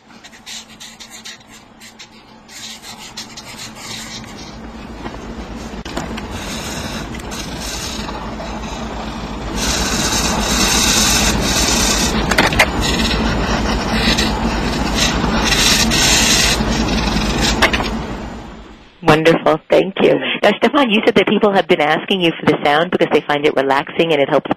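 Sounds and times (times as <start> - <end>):
sped-up Sharpie markers drawing on paper: 0.0 - 4.6, 5.6 - 17.7
speech: 19.5 - 24.5.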